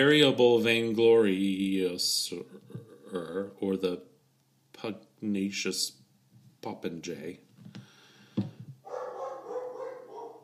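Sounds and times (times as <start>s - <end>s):
speech: 0.0s - 4.1s, 4.8s - 6.0s, 6.6s - 7.8s
dog barking sharply: 8.8s - 10.4s.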